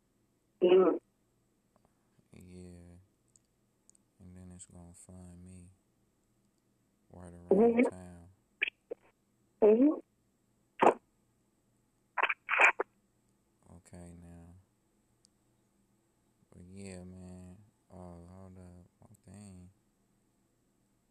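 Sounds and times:
speech: 0:00.6 - 0:01.1, 0:04.6 - 0:05.8, 0:07.2 - 0:08.0, 0:09.6 - 0:10.0
distorted stuttering voice on glitching phone-call audio: 0:07.2 - 0:08.8, 0:12.2 - 0:12.8
digital chirps and clicks from glitching phone-call audio: 0:12.2 - 0:12.8.

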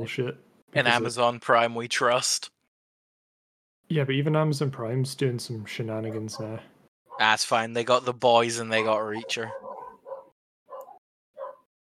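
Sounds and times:
speech: 0:00.0 - 0:02.5, 0:03.9 - 0:09.7
dog barking: 0:07.1 - 0:07.3, 0:08.8 - 0:11.7.

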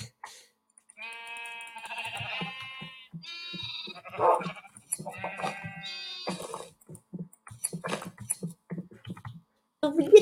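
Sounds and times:
video game sheep bleating: 0:00.9 - 0:06.8.

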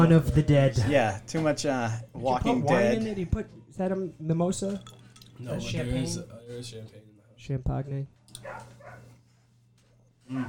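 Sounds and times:
speech: 0:00.0 - 0:08.7, 0:10.3 - 0:10.4
dogs barking: 0:08.4 - 0:09.2.

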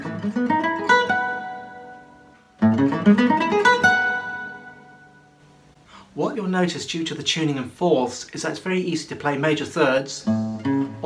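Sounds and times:
Lydian arpeggio plucked on a guitar tuned in fourths: 0:00.0 - 0:05.8, 0:10.2 - 0:11.0
speech: 0:00.2 - 0:00.7, 0:02.8 - 0:03.4, 0:06.5 - 0:11.0.

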